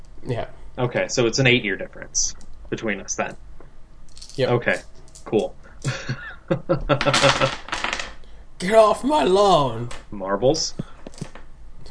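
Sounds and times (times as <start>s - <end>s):
speech: 0.2s - 3.4s, 4.3s - 7.7s, 8.6s - 11.4s
laughter: 5.8s - 7.5s
dice dropped onto a hard surface clattering: 7.0s - 8.2s.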